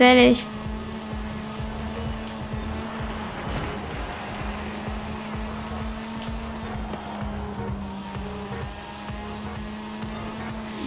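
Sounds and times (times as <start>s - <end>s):
speech: 0.0s - 0.6s
car engine in a racing video game at high revs: 0.0s - 10.8s
road sound: 0.0s - 10.8s
tire noise: 0.0s - 10.8s.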